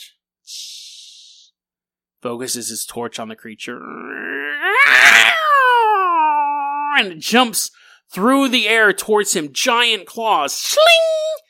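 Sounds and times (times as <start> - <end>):
speech: 2.2 - 5.3, 7.0 - 11.2
cat yowling: 4.2 - 7.0.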